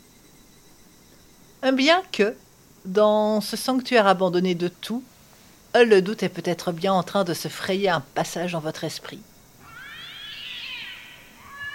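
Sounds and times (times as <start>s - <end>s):
speech: 1.6s - 5.1s, 5.8s - 9.3s
drawn-out feline cry of large cat or lynx: 9.6s - 11.7s.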